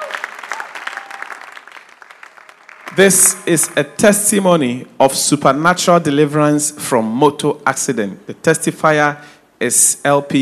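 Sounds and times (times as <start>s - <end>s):
audience clapping in celebration: 0.0s - 3.4s
speech: 2.9s - 10.4s.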